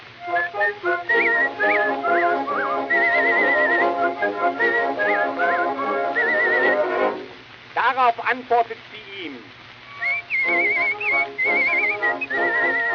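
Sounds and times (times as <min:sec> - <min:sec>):
sustained instrumental backing: 0:00.0 - 0:07.5, 0:09.8 - 0:12.9
person whistling an imitation of a siskin's call: 0:00.2 - 0:06.8, 0:09.9 - 0:12.9
speech: 0:08.1 - 0:09.5.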